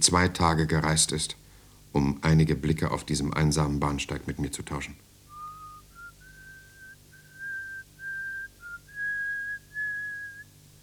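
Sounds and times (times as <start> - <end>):
speech: 0.0 - 5.1
woman whistling a song on a railway platform: 5.3 - 10.6.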